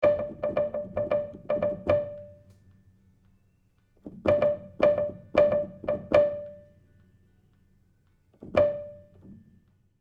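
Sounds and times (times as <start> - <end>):
dry felt pluck: 0.0 - 2.4, 4.3 - 6.6, 8.5 - 9.1.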